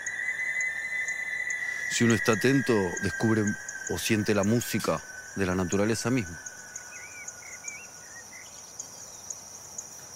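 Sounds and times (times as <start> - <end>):
steady high drone of crickets: 0.0 - 10.1
sharp ticks: 1.4 - 7.8
speech: 1.9 - 6.5.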